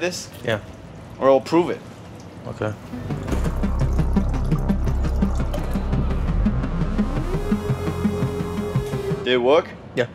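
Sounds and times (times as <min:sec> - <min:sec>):
speech: 0:00.0 - 0:03.2, 0:09.3 - 0:10.1
low mechanical thrum of a solar-powered machine: 0:03.0 - 0:08.9
treated clean water pouring from a solar-powered waste water machine: 0:03.2 - 0:06.3.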